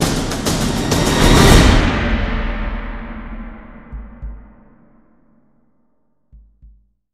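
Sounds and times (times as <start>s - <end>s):
drum roll with splash cymbal: 0.0s - 4.9s.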